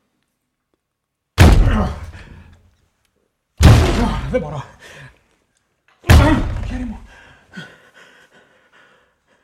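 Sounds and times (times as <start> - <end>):
heavy slams against an armored door as police force it open: 1.4 - 2.2, 3.6 - 4.4, 6.1 - 7.1
speech: 1.8 - 2.3, 4.3 - 5.1, 6.7 - 7.7.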